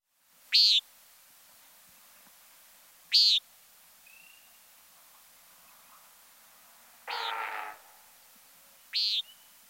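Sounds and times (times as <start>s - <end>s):
Common Nighthawk buzzy nasal high calls: 7.1s - 7.8s, 8.9s - 9.3s.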